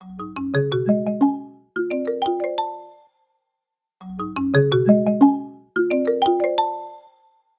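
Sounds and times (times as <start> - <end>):
marimba: 0.0 - 3.2, 4.0 - 7.3.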